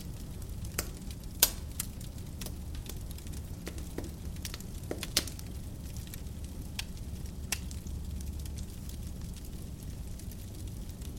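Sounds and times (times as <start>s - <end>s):
fire crackling in a fireplace: 0.0s - 11.1s.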